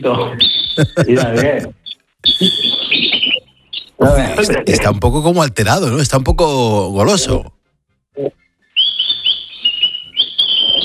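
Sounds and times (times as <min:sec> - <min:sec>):
speech: 0:00.0 - 0:02.8, 0:04.0 - 0:07.6, 0:08.2 - 0:08.4
small pet bird chirping: 0:00.3 - 0:01.1, 0:01.8 - 0:04.0, 0:08.3 - 0:10.8
laughter: 0:00.8 - 0:02.8.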